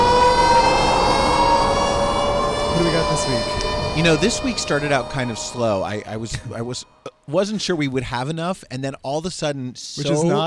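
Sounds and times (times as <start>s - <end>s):
loud steady siren wailing with high tones and layered harmonics: 0.0s - 8.0s
speech: 2.8s - 10.4s.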